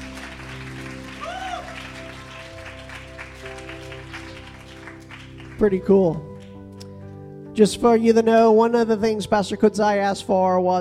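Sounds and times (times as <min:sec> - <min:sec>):
audience applauding with dense hand clapping: 0:00.0 - 0:06.8
rising whoop: 0:01.0 - 0:02.3
speech: 0:05.6 - 0:06.3, 0:07.6 - 0:10.7.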